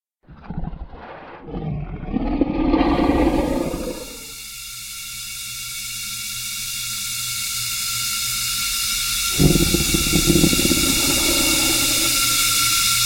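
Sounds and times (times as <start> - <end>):
gold dragon breath weapon effect: 0.3 - 4.3, 9.3 - 12.9.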